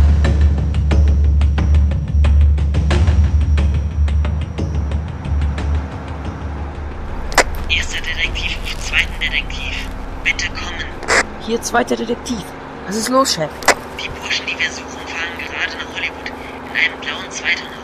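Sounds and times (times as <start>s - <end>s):
truck engine idling: 0.0s - 17.8s
speech: 11.7s - 13.7s.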